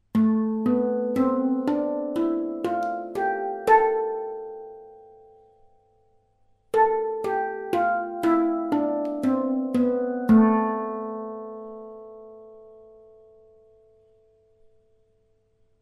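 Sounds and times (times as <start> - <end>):
diatonic handpan playing in A minor: 0.0 - 5.7, 6.8 - 13.1.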